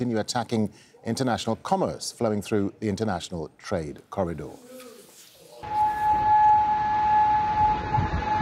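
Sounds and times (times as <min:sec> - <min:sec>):
speech: 0:00.0 - 0:04.8
air raid siren wailing: 0:05.6 - 0:08.4.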